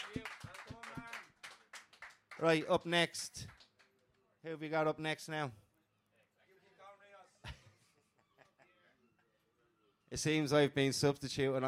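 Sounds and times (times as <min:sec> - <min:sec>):
crowd applause: 0:00.0 - 0:02.6
speech: 0:00.2 - 0:00.4, 0:02.4 - 0:03.6, 0:04.4 - 0:05.6, 0:10.1 - 0:11.6.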